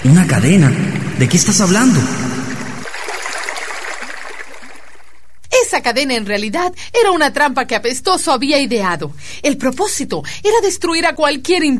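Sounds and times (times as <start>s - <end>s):
water flooding into a cave: 0.0s - 5.2s
speech: 0.1s - 2.4s, 5.8s - 11.7s.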